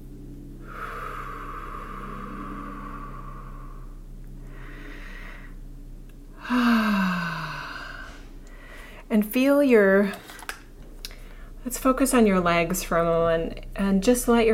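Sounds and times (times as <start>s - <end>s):
slow deep breathing during a guided relaxation exercise: 0.6s - 9.1s, 11.0s - 11.6s
speech: 9.1s - 10.2s, 11.7s - 14.5s.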